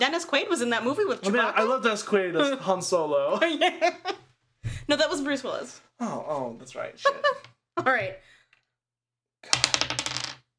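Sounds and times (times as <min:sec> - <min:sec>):
speech: 0:00.0 - 0:04.2, 0:04.9 - 0:08.3
laughter: 0:03.3 - 0:04.2
dice clattering across a hard tabletop: 0:09.5 - 0:10.5.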